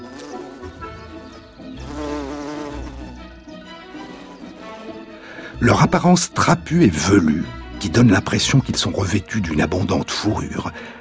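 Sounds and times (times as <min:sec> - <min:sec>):
bumblebee buzzing in flight: 0:00.0 - 0:05.2
speech: 0:05.6 - 0:10.9.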